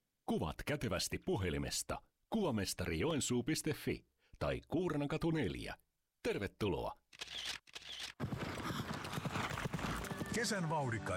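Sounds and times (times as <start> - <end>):
speech: 0.3 - 7.4, 10.4 - 11.1
horses' hooves clip-clopping at a harness trotting race at a fortress: 8.2 - 10.6.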